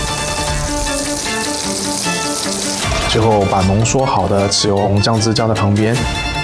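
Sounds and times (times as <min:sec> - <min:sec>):
steamed pigeon breast pan-frying in hot fat: 0:00.0 - 0:04.0
speech: 0:03.2 - 0:06.3.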